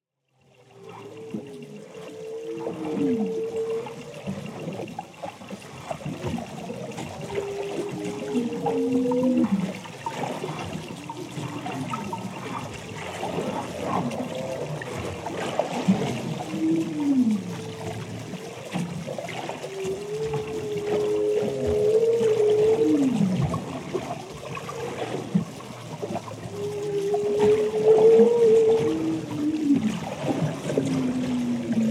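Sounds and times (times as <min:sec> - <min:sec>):
humpback whale calls: 0:00.4 - 0:31.9.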